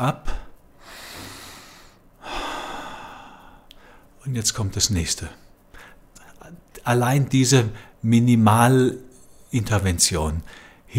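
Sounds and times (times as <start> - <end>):
speech: 0.0 - 0.4, 4.2 - 5.5, 6.9 - 10.9
single deliberate breath: 0.3 - 4.1, 5.7 - 6.1, 10.5 - 10.9.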